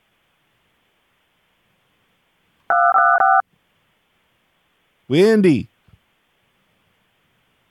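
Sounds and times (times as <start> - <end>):
telephone touch-tone dialing beeps: 2.7 - 3.4
speech: 5.1 - 5.7.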